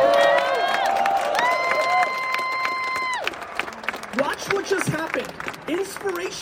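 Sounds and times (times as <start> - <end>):
whooping cheers: 0.0 - 3.4
small audience clapping: 0.0 - 6.4
speech: 4.4 - 6.4.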